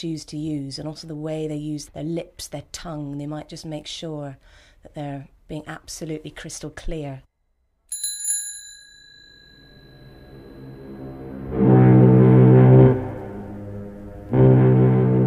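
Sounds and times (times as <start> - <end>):
speech: 0.0 - 7.3
bright bicycle bell ding: 7.9 - 10.8
loud low droning horn blasts: 10.2 - 15.2.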